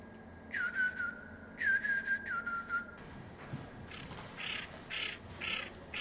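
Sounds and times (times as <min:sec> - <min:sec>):
common redshank piping whistles: 0:00.5 - 0:03.0
common redshank raspy squawking calls: 0:03.9 - 0:05.9.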